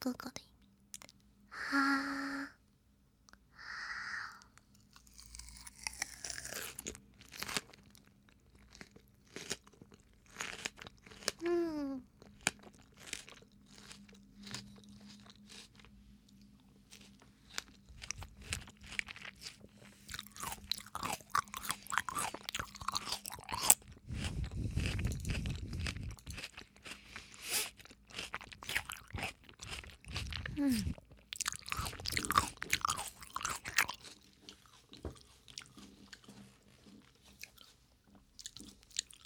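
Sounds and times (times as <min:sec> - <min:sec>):
speech: 0:00.0 - 0:00.4, 0:01.7 - 0:02.2
person crunching and chewing melon: 0:04.8 - 0:39.2.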